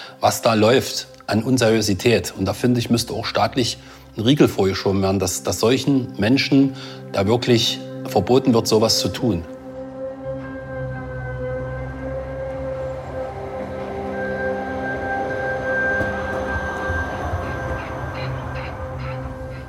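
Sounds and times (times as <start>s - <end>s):
speech: 0.2s - 9.6s
tram electric motor whine in fields near Leuna Germany: 9.8s - 19.6s
tram wheels rumbling on tracks through fields near Leuna Germany: 12.8s - 19.6s.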